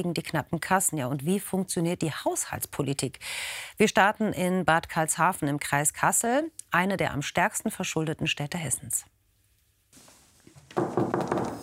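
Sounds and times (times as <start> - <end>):
speech: 0.0 - 9.1, 10.8 - 11.2
town treasurer knocking on an office door in a town hall: 10.6 - 11.6.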